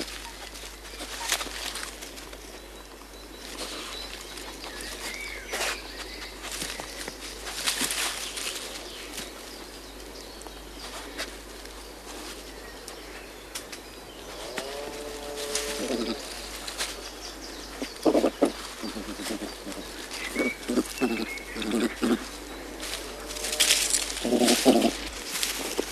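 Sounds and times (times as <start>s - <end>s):
European badger rustling and scuffling: 0.0s - 25.8s
European badger whining call: 20.3s - 25.1s.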